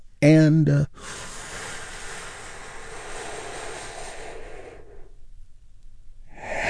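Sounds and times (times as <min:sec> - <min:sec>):
slow deep calming breath: 0:00.9 - 0:05.5, 0:06.2 - 0:06.6.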